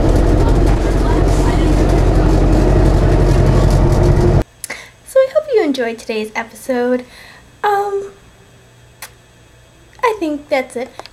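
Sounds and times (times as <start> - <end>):
city bus engine rumbling: 0.0 - 4.4
road and motor noise: 0.0 - 4.4
speech: 5.8 - 8.2, 10.0 - 11.1.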